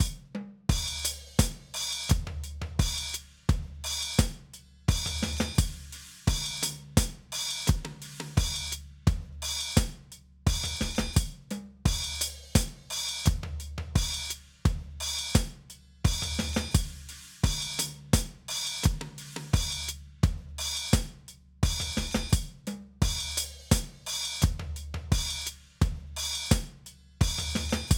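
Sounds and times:
annoying hi-hats: 0.0 - 27.9.

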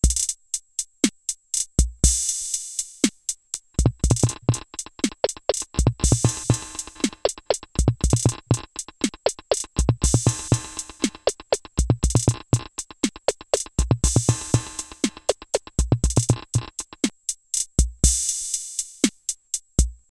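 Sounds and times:
drums with pitch delay effects: 0.0 - 20.0.

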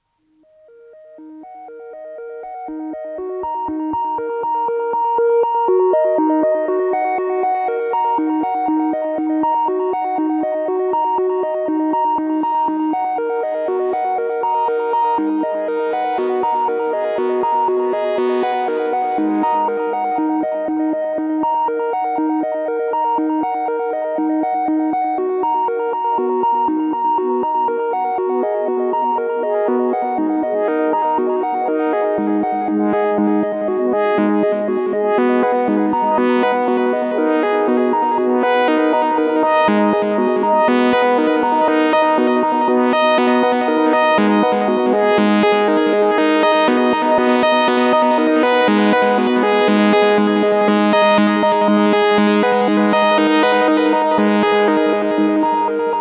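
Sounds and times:
Cascadia duo oscillator synthesizer: 2.4 - 55.9.

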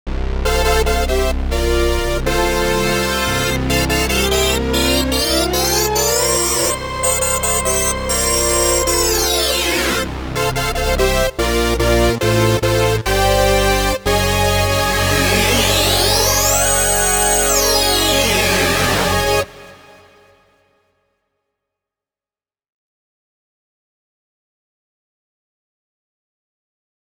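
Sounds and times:
Oberheim power synth brass: 0.1 - 20.4.

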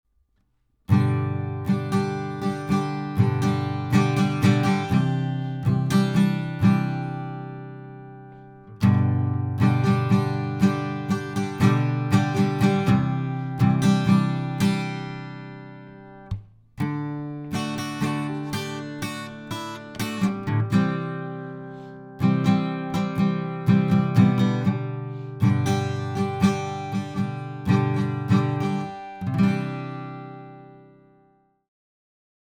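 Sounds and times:
guitar through Warm Audio equipment: 0.9 - 31.6.

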